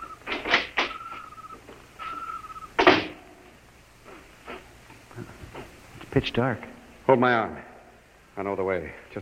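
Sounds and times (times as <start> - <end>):
small side door of a silo rattling and creaking open: 0.0 - 3.2
softer shuffling handling noises: 4.0 - 6.2
speech: 6.2 - 7.7, 8.4 - 9.2.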